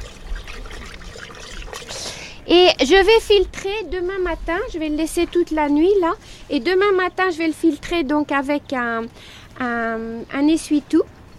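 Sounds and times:
water mixed with wood ash being stirred: 0:00.0 - 0:04.1
speech: 0:02.5 - 0:11.2.

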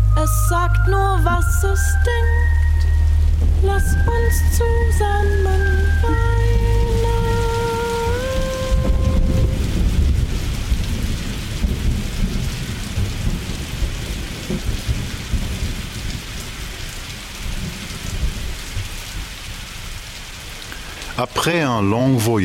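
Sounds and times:
deep thunder rumbling: 0:00.0 - 0:16.8
heavy rain: 0:00.0 - 0:22.4
speech: 0:00.2 - 0:02.6, 0:03.4 - 0:06.4, 0:21.2 - 0:22.4.

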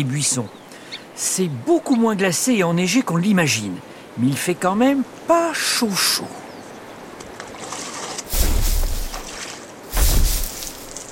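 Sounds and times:
speech: 0:00.0 - 0:06.4
soft steady background of moving water: 0:00.6 - 0:11.1
water of a river lapping and sloshing: 0:07.1 - 0:11.1.

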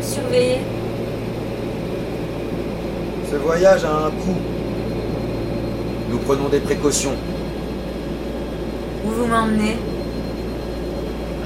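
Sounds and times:
airplane cabin engine drone with faint high whine: 0:00.0 - 0:11.4
speech: 0:00.3 - 0:00.8, 0:03.3 - 0:04.6, 0:06.1 - 0:07.4, 0:09.0 - 0:09.9.

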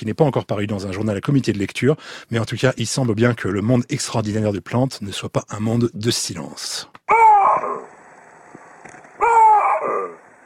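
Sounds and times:
speech: 0:00.0 - 0:07.8
baboon loud bark-like calls: 0:07.1 - 0:07.9, 0:09.2 - 0:10.2.

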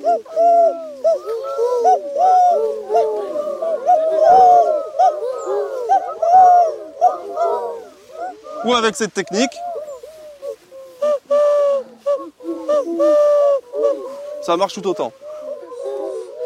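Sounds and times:
speech: 0:00.0 - 0:01.4, 0:08.7 - 0:09.7, 0:14.5 - 0:15.2
person imitating a turtle dove's cooing call: 0:00.0 - 0:16.4.

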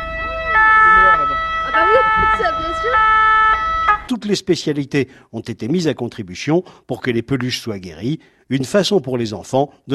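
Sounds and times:
two-tone ambulance siren: 0:00.0 - 0:04.1
speech: 0:02.4 - 0:03.3, 0:04.1 - 0:09.9.

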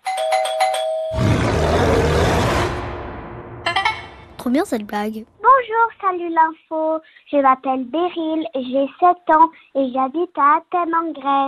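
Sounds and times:
electronic doorbell chiming ding-dong: 0:00.0 - 0:01.3
loud rumbling roar: 0:01.2 - 0:03.7
speech: 0:04.4 - 0:11.4.

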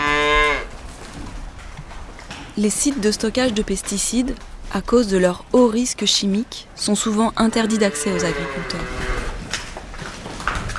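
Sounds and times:
cow mooing on a farm: 0:00.0 - 0:00.7, 0:07.5 - 0:09.4
faint outdoor farm ambience: 0:00.0 - 0:10.7
speech: 0:02.6 - 0:09.1.

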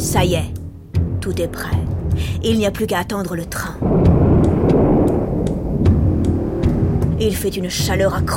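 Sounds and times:
speech: 0:00.1 - 0:00.6, 0:01.3 - 0:03.8, 0:07.2 - 0:08.3
distant thunder rolling in a long deep rumble: 0:03.5 - 0:08.3
faint crackling ticks: 0:03.8 - 0:07.2.

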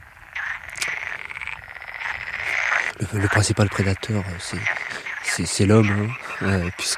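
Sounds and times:
frogs croaking in a ditch: 0:00.0 - 0:06.9
speech: 0:03.0 - 0:06.9.

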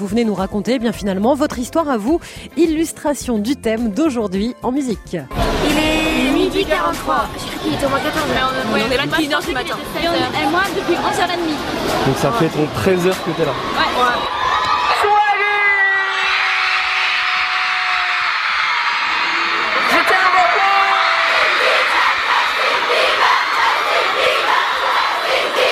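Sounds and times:
speech: 0:00.0 - 0:14.4
large crowd of hysterical young fans screaming and cheering: 0:05.3 - 0:09.4, 0:10.2 - 0:25.7.

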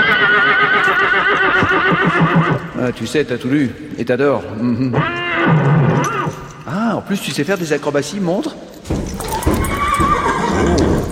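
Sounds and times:
horse giving a long loud whinny: 0:00.0 - 0:02.8, 0:04.8 - 0:06.6, 0:09.2 - 0:11.0
speech: 0:02.8 - 0:06.2, 0:06.9 - 0:09.0.

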